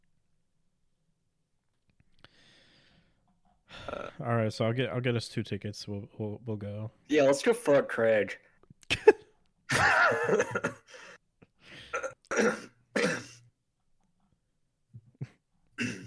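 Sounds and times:
speech: 4.2s - 9.1s, 9.8s - 11.1s, 11.9s - 12.7s
person clearing throat: 11.9s - 13.4s, 15.8s - 16.0s.

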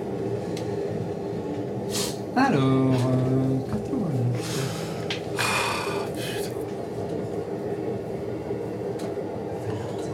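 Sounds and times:
low rumble of a metro car in motion: 0.0s - 10.1s
speech: 2.4s - 4.8s.

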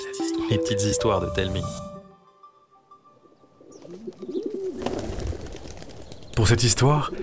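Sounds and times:
rustling wind: 0.3s - 7.2s
speech: 0.5s - 1.9s, 6.4s - 7.2s
pigeons cooing: 3.3s - 6.3s, 7.0s - 7.2s
wings fluttering: 3.7s - 6.8s.

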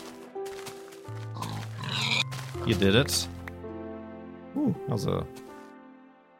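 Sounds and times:
pig oinking and grunting: 1.4s - 2.3s
speech: 2.6s - 3.4s, 4.6s - 5.4s.

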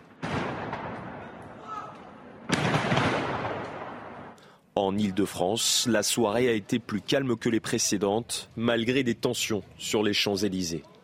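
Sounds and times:
explosions of a fireworks stockpile near homes in Strasbourg: 0.0s - 1.6s, 2.4s - 4.4s
crackling roar of burning fireworks stockpile: 0.0s - 4.5s
speech: 4.8s - 10.9s.

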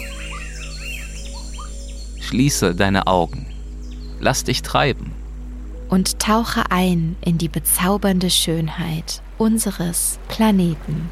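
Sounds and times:
several exotic birds singing in the rainforests of Costa Rica: 0.0s - 6.3s
speech: 2.3s - 3.5s, 4.2s - 5.2s, 5.9s - 11.1s.

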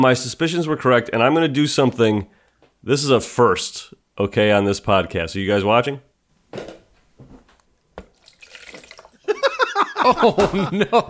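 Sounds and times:
speech: 0.0s - 6.1s, 10.0s - 11.0s
cocktail poured into a bucket: 8.0s - 9.3s
laughter: 9.2s - 11.0s.

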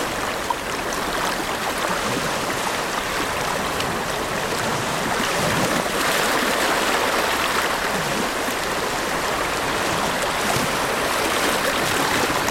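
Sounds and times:
gentle ocean waves washing onto sand: 0.0s - 12.4s.

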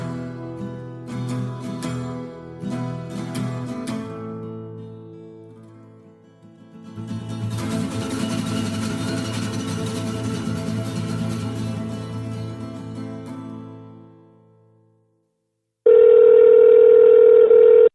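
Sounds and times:
music: 0.0s - 15.2s
telephone ringing tone on a call: 15.9s - 17.9s.

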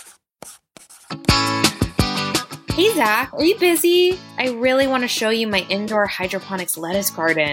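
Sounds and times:
quick scratchy pencil strokes on paper: 0.0s - 1.2s
speech: 2.8s - 7.5s.

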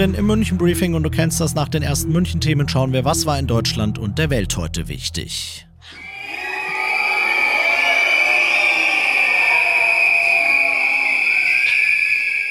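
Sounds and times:
speech: 0.0s - 6.0s
crowd whistling in loud protest: 5.9s - 12.4s.

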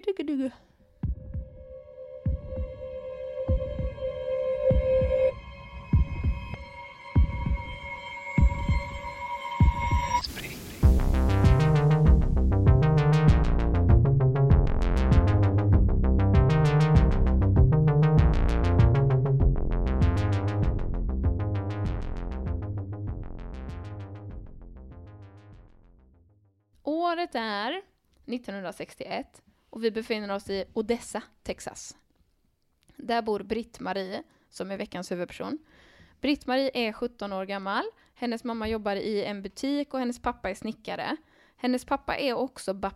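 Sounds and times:
speech: 0.2s - 0.7s, 27.3s - 32.0s, 33.0s - 42.9s
podcast jingle with synth tones and thumping beat: 1.0s - 26.4s.

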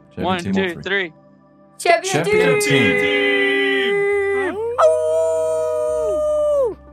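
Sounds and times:
laughter: 0.2s - 0.9s, 2.1s - 4.6s
speech: 0.2s - 1.2s, 1.8s - 3.5s
voice imitating a dragon's roar: 2.1s - 6.8s.

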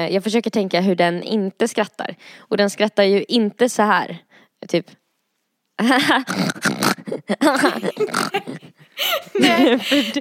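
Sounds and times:
speech: 0.0s - 5.0s, 5.8s - 10.1s
voice imitating a pig's grunting snort: 6.2s - 8.7s
laughter: 7.4s - 10.1s.

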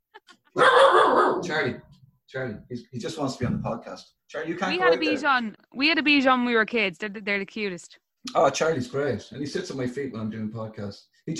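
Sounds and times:
small dog barking at someone at the door: 0.6s - 1.5s
speech: 1.5s - 11.3s.

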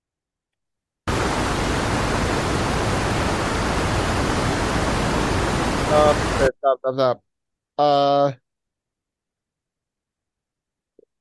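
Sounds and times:
waterfall roaring: 1.1s - 6.5s
speech: 6.7s - 8.4s.

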